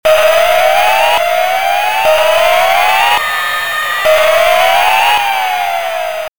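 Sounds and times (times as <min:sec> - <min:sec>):
alarm: 0:00.0 - 0:06.3.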